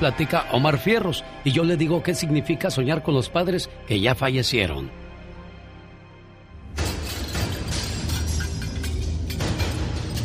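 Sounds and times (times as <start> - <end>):
speech: 0.0 - 5.0
glass shattering: 6.8 - 10.2.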